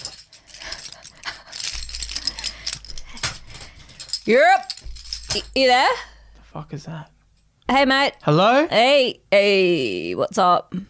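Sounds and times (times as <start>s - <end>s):
keys jingling and clattering as they are set down: 0.0s - 6.3s
speech: 4.2s - 4.7s, 5.3s - 7.1s, 7.7s - 10.8s.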